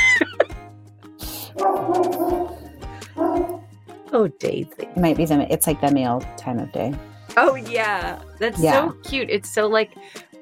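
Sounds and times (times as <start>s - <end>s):
several dogs barking and yipping: 1.5s - 3.7s
speech: 4.2s - 10.3s.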